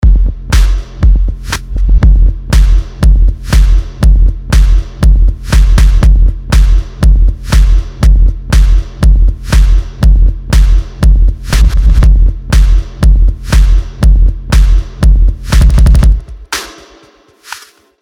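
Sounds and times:
beat elements: 0.0 - 18.0.

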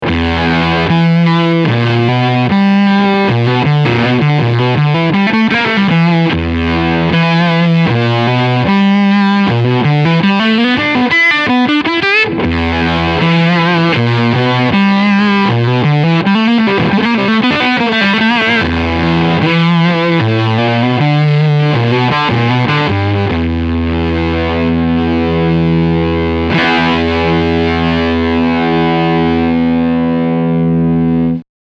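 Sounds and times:
harmonic fuzz: 0.0 - 31.4.

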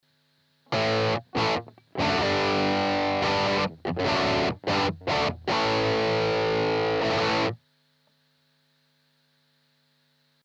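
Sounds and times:
overdriven Strat electric guitar through a clean overdrive pedal: 0.7 - 7.6.

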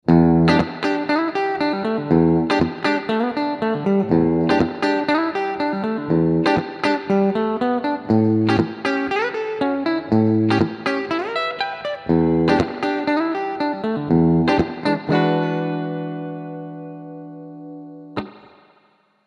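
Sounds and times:
ESP Phoenix-401 bridge pickup clean tone: 0.1 - 18.6.

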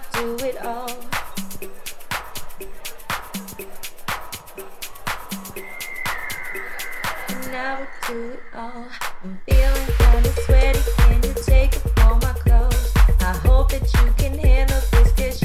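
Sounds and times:
record scratch with Ortofon Concorde MKII cartridge: 3.1 - 15.3.

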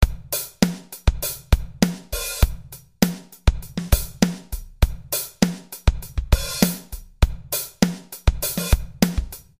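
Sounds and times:
compressed drum machine groove: 0.0 - 9.5.

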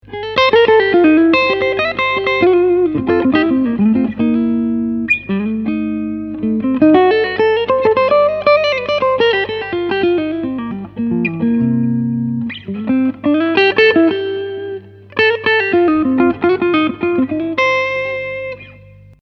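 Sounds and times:
electric guitar on neck pickup with overdrive off: 0.0 - 19.2.

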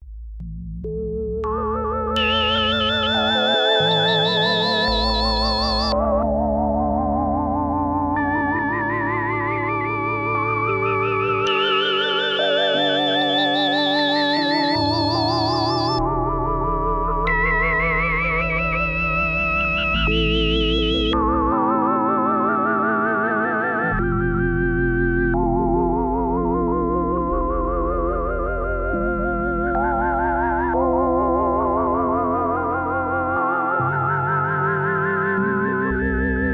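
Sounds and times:
Polysix polyphonic synthesizer: 0.4 - 36.5.

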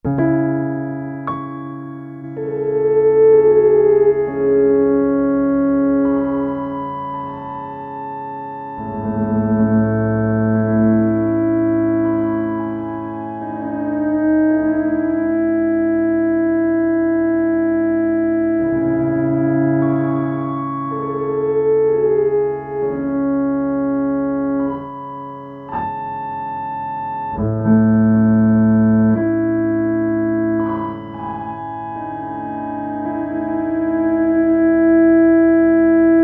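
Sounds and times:
piano through freeze effect pedal in auto mode: 0.0 - 36.2.

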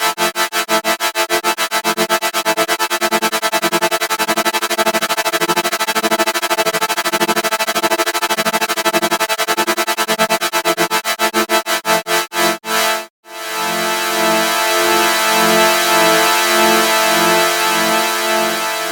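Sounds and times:
synth with maximum LFO modulation: 0.2 - 18.7.

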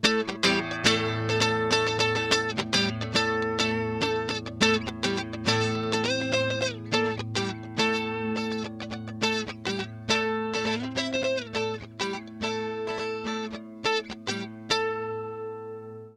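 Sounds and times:
guitar with subtle flanger effect: 0.0 - 16.1.

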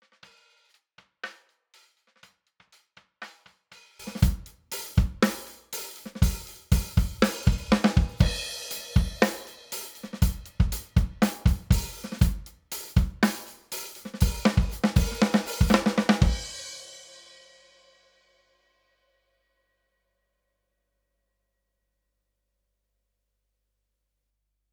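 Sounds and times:
quieter snare drum: 0.0 - 16.9.

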